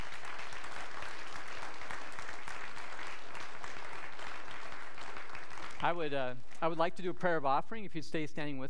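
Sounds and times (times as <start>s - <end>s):
crowd of people applauding: 0.0s - 6.4s
speech: 5.8s - 8.6s.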